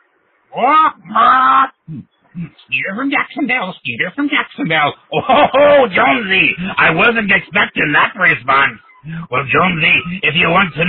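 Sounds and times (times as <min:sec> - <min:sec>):
speech: 0:00.5 - 0:10.8
parrot squawking: 0:00.6 - 0:02.7, 0:08.4 - 0:10.8
laughter: 0:05.1 - 0:10.8.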